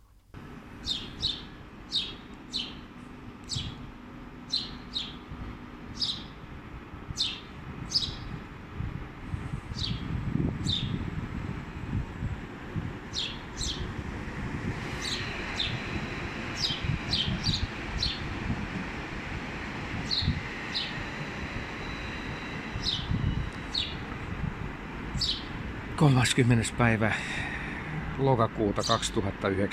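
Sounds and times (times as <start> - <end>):
steady low rumble of train noise at Pasila railway station: 0.4 - 29.7
house sparrow chirping at Pasila railway station: 0.8 - 3.9, 4.5 - 5.3, 5.9 - 6.4, 7.1 - 8.4, 9.7 - 11.0, 13.0 - 14.0, 14.8 - 24.2, 25.1 - 25.6, 28.8 - 29.2
speech: 26.0 - 27.4, 28.2 - 29.7.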